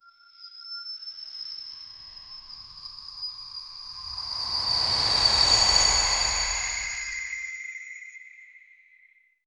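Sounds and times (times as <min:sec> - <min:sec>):
dark magic shards moving: 0:03.8 - 0:07.4.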